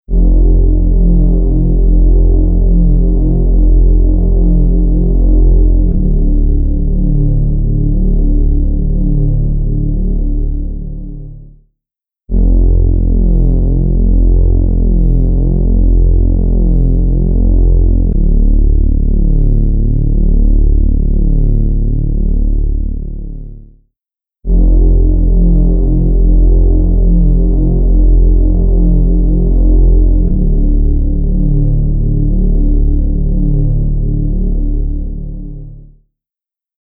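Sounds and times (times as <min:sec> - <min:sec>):
bass: 0:00.0 - 0:11.7, 0:12.3 - 0:36.0.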